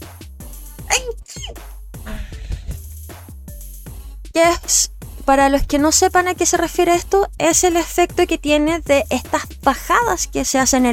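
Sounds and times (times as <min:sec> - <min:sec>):
person sneezing: 0:00.8 - 0:02.7
soft vocal sounds: 0:00.8 - 0:02.8
speech: 0:04.4 - 0:10.9.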